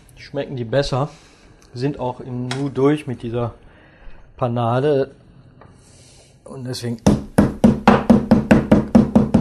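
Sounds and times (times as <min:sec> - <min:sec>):
speech: 0:00.2 - 0:03.6, 0:04.4 - 0:05.2, 0:06.5 - 0:07.2
meat mallet pounding thin schnitzel cutlets on a board: 0:07.1 - 0:09.3.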